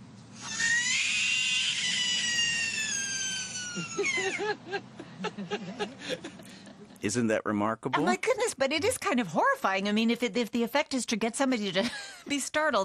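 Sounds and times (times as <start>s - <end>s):
frog distress scream: 0.4s - 4.4s
laughter: 3.7s - 7.1s
speech: 3.8s - 12.8s.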